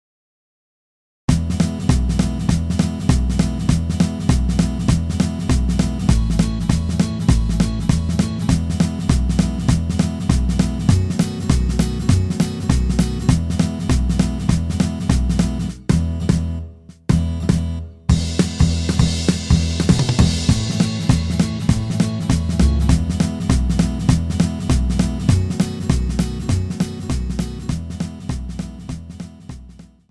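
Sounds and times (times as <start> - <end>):
twangy guitar: 1.3 - 29.8.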